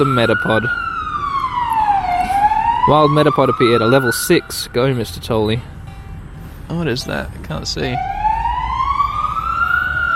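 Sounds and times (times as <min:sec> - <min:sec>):
speech: 0:00.0 - 0:00.9, 0:02.8 - 0:05.7, 0:06.7 - 0:08.1
police car siren wailing near a city centre: 0:00.0 - 0:04.9, 0:08.0 - 0:10.1
low rumble of traffic: 0:00.0 - 0:10.1.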